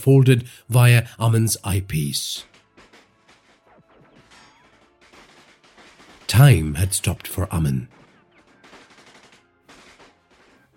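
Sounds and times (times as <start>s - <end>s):
speech: 0.0s - 2.5s, 6.3s - 8.0s
automatic gunfire: 2.4s - 6.7s, 7.9s - 10.7s.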